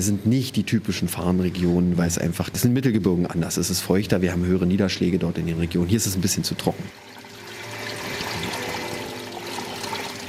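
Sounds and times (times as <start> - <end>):
speech: 0.0 - 7.2
water gurgling and rushing: 6.6 - 10.2.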